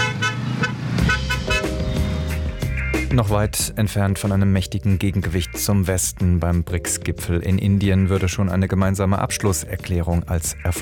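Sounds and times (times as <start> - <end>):
car horns honking in summit gridlock in India: 0.0 - 3.0
heavy road traffic engine rumble during summit gridlock in India: 0.0 - 3.1
speech: 3.2 - 10.8.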